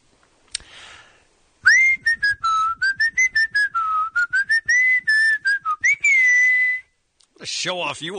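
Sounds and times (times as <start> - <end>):
person whistling a tune: 1.6 - 7.0.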